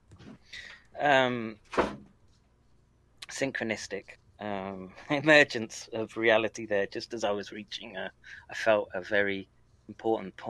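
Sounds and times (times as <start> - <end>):
speech: 1.0 - 1.9, 3.4 - 10.4
door creaking shut: 1.6 - 2.1.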